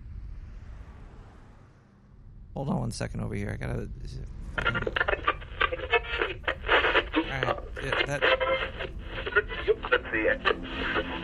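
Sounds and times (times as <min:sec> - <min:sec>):
speech: 0:02.6 - 0:05.3, 0:08.1 - 0:08.8, 0:10.1 - 0:11.2
car radio crackling with static while being tuned: 0:04.6 - 0:11.2.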